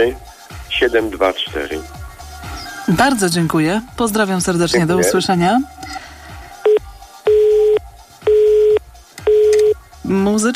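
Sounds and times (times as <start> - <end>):
speech: 0.0 - 0.2, 0.8 - 2.0, 2.9 - 5.8, 10.1 - 10.5
telephone busy tone after a disconnected call: 6.7 - 9.8.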